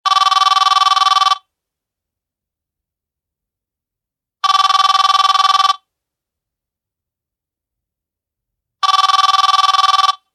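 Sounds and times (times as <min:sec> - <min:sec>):
loud annoying ringtone: 0:00.1 - 0:01.5, 0:04.4 - 0:05.8, 0:08.8 - 0:10.3.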